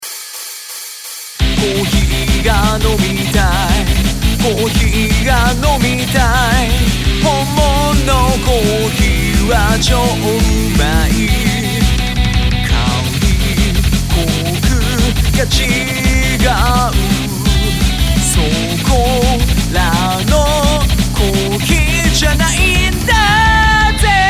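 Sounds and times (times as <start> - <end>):
person singing a song about wanting coffee: 1.4 - 24.2.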